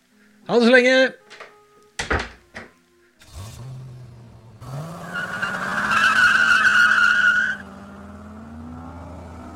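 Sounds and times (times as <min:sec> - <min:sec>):
speech: 0:00.5 - 0:01.2
sharp knocks: 0:01.3 - 0:02.8
car engine revving hard as the car speeds away: 0:03.2 - 0:09.5
car tires squealing in a long skid on a dusty road: 0:04.6 - 0:07.9.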